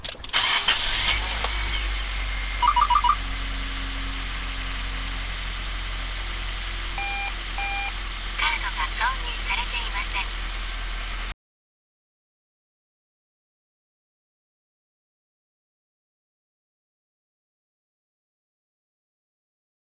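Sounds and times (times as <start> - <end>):
car engine starting with replaced starter motor: 0.0 - 11.4.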